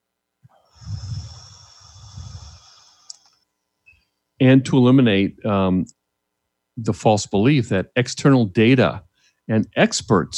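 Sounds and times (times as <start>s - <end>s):
deep breath blown out: 0.7s - 3.2s
speech: 4.4s - 6.0s, 6.8s - 10.3s.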